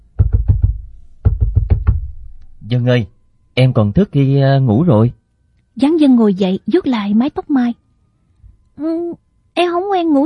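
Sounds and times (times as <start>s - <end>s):
knocking on a door: 0.0s - 2.3s
speech: 2.7s - 5.2s, 5.8s - 7.8s, 8.8s - 10.2s.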